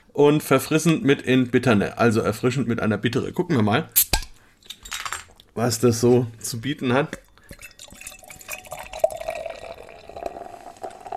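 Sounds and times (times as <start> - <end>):
speech: 0.2 - 4.1, 5.6 - 7.2
alcohol-free beer pouring into a glass: 7.2 - 11.1.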